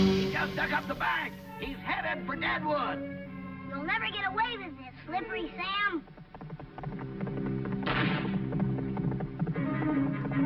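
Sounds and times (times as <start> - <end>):
dense sustained musical backing: 0.0 - 5.9, 6.5 - 10.4
speech: 0.0 - 6.2
hoofbeats of a galloping horse: 5.1 - 10.4.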